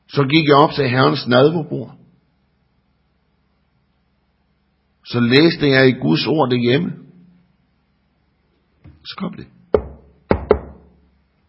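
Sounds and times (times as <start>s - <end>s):
speech: 0.2s - 2.0s, 5.1s - 7.0s, 9.0s - 9.6s
knocking on a door: 9.7s - 11.0s.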